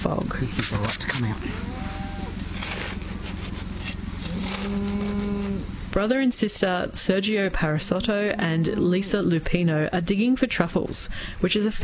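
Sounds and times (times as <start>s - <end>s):
speech: 0.0s - 1.7s, 6.0s - 11.8s
steady noisy outdoor background: 0.0s - 11.8s
cattle lowing on a cattle farm on a cold wet foggy morning: 1.4s - 2.7s, 4.2s - 5.7s.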